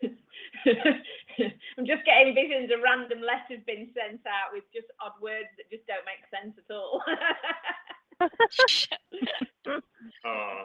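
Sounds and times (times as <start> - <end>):
speech: 0.7 - 10.6
person sneezing: 8.5 - 9.4.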